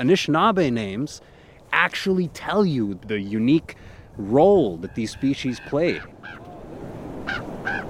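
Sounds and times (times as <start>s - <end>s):
speech: 0.0s - 6.4s, 7.3s - 7.8s
steady outdoor hiss: 0.0s - 7.8s
raven giving hoarse croaking calls: 4.8s - 6.6s.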